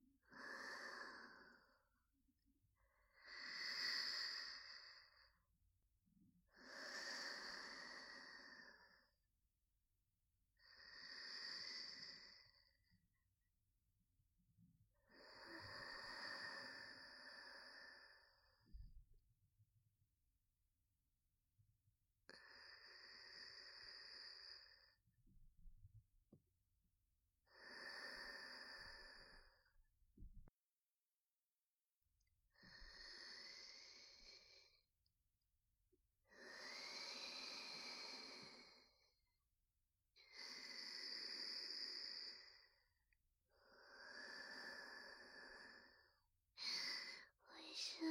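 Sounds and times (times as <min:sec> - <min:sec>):
person breathing in sleep: 0:00.2 - 0:02.0, 0:03.0 - 0:05.4, 0:06.5 - 0:09.2, 0:10.6 - 0:13.0, 0:15.0 - 0:18.8, 0:22.3 - 0:25.0, 0:27.4 - 0:29.8, 0:32.5 - 0:34.8, 0:36.2 - 0:39.2, 0:40.2 - 0:48.0.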